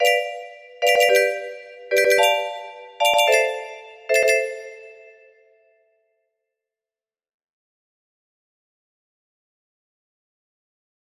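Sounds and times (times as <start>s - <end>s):
4 chord progression: 0.0s - 5.2s
music box melody: 0.0s - 5.3s.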